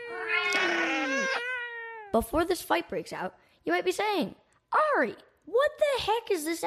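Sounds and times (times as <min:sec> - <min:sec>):
cat yowling: 0:00.0 - 0:02.2
speech: 0:02.1 - 0:06.6.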